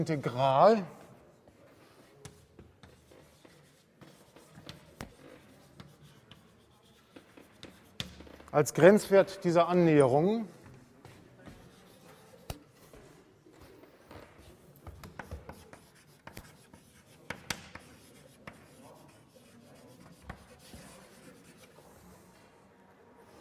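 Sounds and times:
speech: 0.0s - 1.0s, 8.5s - 10.6s
handwriting during a maths lecture: 1.5s - 8.5s, 11.0s - 13.0s, 13.7s - 22.3s.

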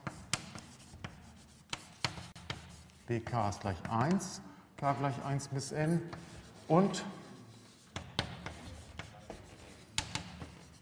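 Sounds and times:
handwriting on a surface: 0.0s - 3.1s, 6.1s - 10.7s
speech: 3.1s - 7.2s.

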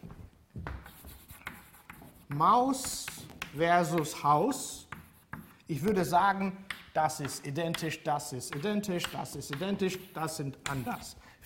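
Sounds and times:
scratchy strokes of handwriting on a board: 0.8s - 6.0s, 8.5s - 11.1s
speech: 2.3s - 4.8s, 5.7s - 11.4s.

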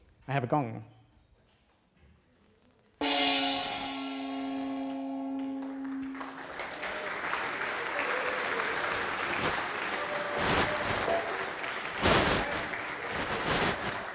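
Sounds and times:
gong strike with long ringing tone: 3.0s - 7.2s
audience applause: 5.6s - 14.1s.

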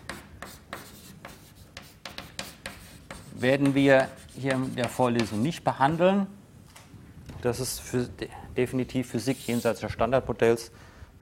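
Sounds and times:
writing on a board during a university physics lecture: 0.0s - 5.5s
speech: 3.4s - 6.4s, 7.4s - 11.2s.

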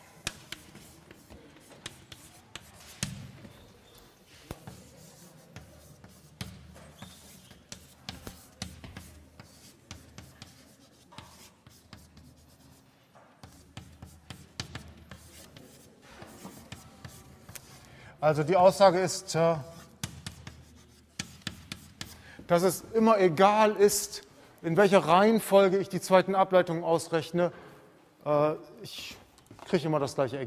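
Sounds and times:
scratchy writing strokes and taps during a maths lecture on derivatives: 0.0s - 17.9s, 19.6s - 22.2s
speech: 18.2s - 19.7s, 22.5s - 27.6s, 28.2s - 30.4s.

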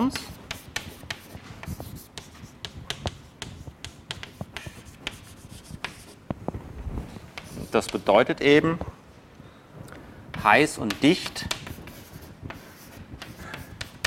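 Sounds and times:
speech: 0.0s - 0.3s, 7.8s - 8.9s, 10.4s - 11.6s
writing on a board during a physics lesson: 0.0s - 6.3s, 7.4s - 8.3s, 10.3s - 14.0s.

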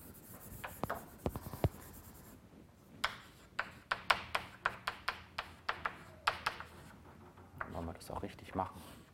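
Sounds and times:
pen or chalk drawing on a board during a physics lecture: 0.0s - 2.4s, 3.0s - 6.9s
speech: 8.2s - 8.9s.

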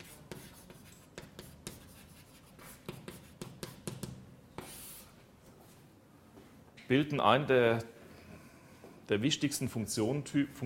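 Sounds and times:
handwriting during a physics lecture: 0.0s - 5.1s
speech: 6.9s - 8.0s, 9.1s - 10.6s.

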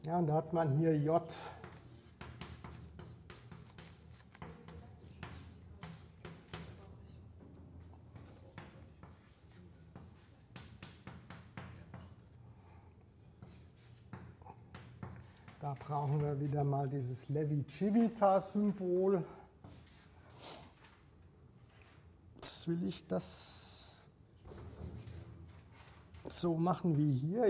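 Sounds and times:
speech: 0.0s - 1.6s, 15.9s - 19.4s, 22.7s - 23.6s, 26.3s - 27.4s
writing on a board during a physics lecture: 1.3s - 7.0s, 7.8s - 12.5s, 13.1s - 16.6s, 19.6s - 20.2s, 24.4s - 26.2s.

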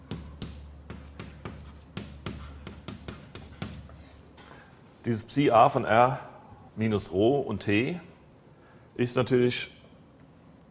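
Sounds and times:
handwriting scratching out an equation during a physics lecture: 0.0s - 4.0s
speech: 5.0s - 8.1s, 9.0s - 9.8s.

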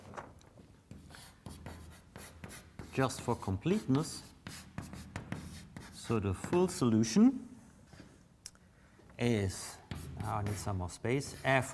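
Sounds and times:
dry scratching of writing out an equation: 0.9s - 6.8s, 9.8s - 11.7s
speech: 3.0s - 4.3s, 6.1s - 7.5s, 9.2s - 11.7s.

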